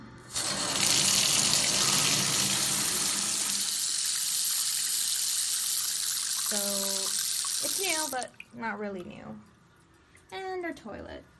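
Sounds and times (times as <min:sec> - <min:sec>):
shower water running: 0:00.3 - 0:08.6
speech: 0:07.8 - 0:09.5, 0:10.3 - 0:11.3.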